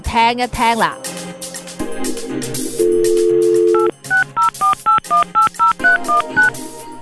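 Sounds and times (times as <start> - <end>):
faint music bed: 0.0 - 7.0
speech: 0.1 - 1.1
steady telephone dial tone: 2.8 - 6.6.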